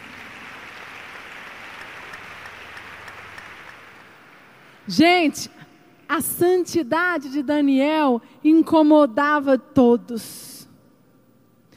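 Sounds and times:
crowd applause: 0:00.0 - 0:04.8
speech: 0:04.9 - 0:10.5.

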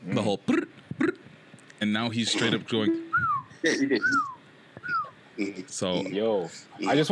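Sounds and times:
speech: 0:00.2 - 0:00.7, 0:01.8 - 0:03.0, 0:03.6 - 0:04.3, 0:05.4 - 0:07.0
quick vocal burst: 0:00.5 - 0:01.3, 0:03.0 - 0:05.7
person whistling a song melody: 0:03.0 - 0:05.1.

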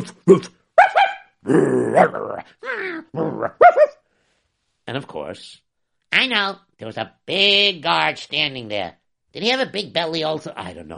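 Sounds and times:
person imitating dog growl: 0:00.0 - 0:00.6, 0:01.4 - 0:03.6
speech: 0:00.0 - 0:00.6, 0:01.4 - 0:03.9, 0:04.9 - 0:10.9
person imitating dog barks: 0:00.0 - 0:04.0.

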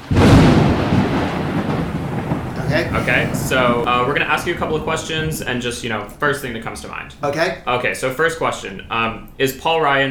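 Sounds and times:
loud thunder crash sound effect with rumbling roar: 0:00.0 - 0:09.9
laughter: 0:02.6 - 0:09.9
speech: 0:02.7 - 0:10.1.

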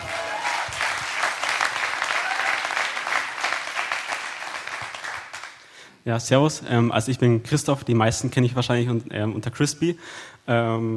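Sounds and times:
room full of people applauding: 0:00.0 - 0:05.6
speech: 0:06.0 - 0:10.9.

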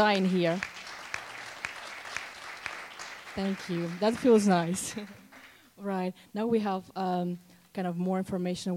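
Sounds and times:
speech: 0:00.0 - 0:00.8, 0:03.4 - 0:05.2, 0:05.8 - 0:08.7
small audience applause: 0:00.0 - 0:05.6
single person clapping a slow, even beat: 0:00.1 - 0:05.6.

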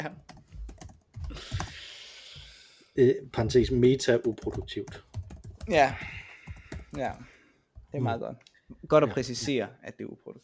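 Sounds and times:
speech: 0:00.0 - 0:00.3, 0:03.0 - 0:05.1, 0:05.7 - 0:06.2, 0:06.9 - 0:07.3, 0:07.9 - 0:10.4
typing on a computer keyboard: 0:00.3 - 0:01.8, 0:04.2 - 0:07.2.

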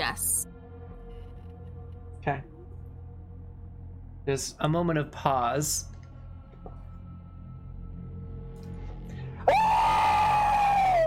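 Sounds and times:
speech: 0:02.2 - 0:02.5, 0:04.2 - 0:05.9
ear-piercing shriek: 0:09.4 - 0:11.0.

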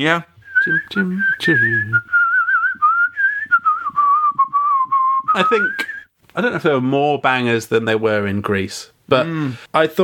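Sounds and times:
speech: 0:00.0 - 0:02.2, 0:05.3 - 0:10.0
person whistling a wavering tune: 0:00.4 - 0:06.1.

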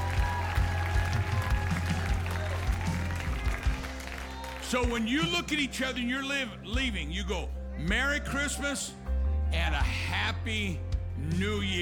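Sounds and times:
large group of audience clapping: 0:00.0 - 0:05.4
speech: 0:04.7 - 0:11.8.

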